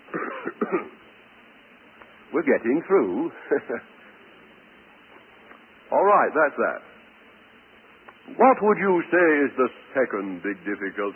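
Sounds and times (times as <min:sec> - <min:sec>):
quick throaty coughs: 0:00.1 - 0:01.0
speech: 0:00.6 - 0:01.0, 0:02.3 - 0:04.0, 0:06.1 - 0:06.9, 0:08.3 - 0:11.1.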